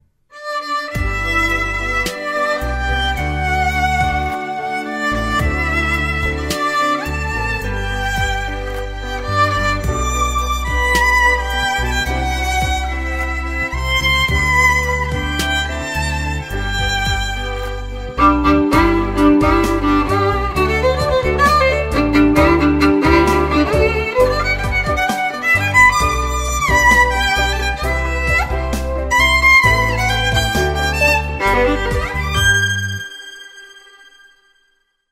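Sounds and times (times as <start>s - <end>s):
birthday song played on violin: 0.3s - 34.8s.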